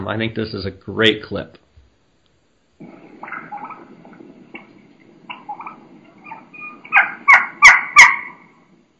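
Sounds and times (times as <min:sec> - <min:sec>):
speech: 0:00.0 - 0:01.6
low steady outdoor rumble: 0:02.4 - 0:08.9
young turkey hen high-pitched keeking calls: 0:02.8 - 0:08.9.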